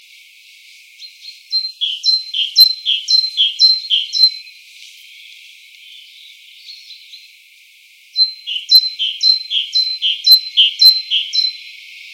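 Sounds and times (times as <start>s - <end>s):
Parus major great tit singing: 1.0s - 7.4s, 8.2s - 12.1s.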